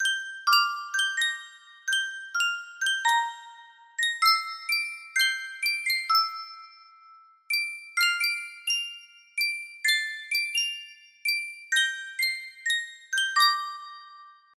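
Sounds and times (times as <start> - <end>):
12 note music box melody: 0.0 - 14.5.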